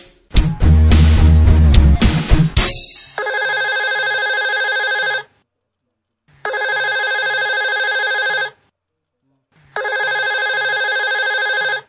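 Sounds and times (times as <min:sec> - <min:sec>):
loud music: 0:00.0 - 0:03.0
outgoing call telephone ringback tone: 0:03.2 - 0:05.3, 0:06.5 - 0:08.6, 0:09.8 - 0:11.8.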